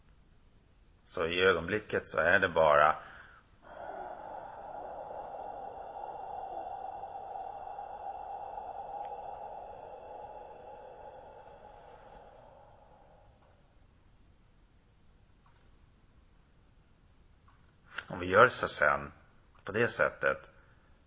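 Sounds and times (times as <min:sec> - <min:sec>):
speech: 0:01.1 - 0:03.1, 0:18.4 - 0:20.5
deep forceful breath during a breathing exercise: 0:03.0 - 0:14.0.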